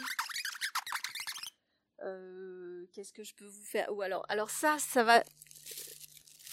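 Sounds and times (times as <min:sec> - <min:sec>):
foley squeaks and chirps by a person imitating little mice: 0:00.0 - 0:01.5
speech: 0:03.0 - 0:05.4.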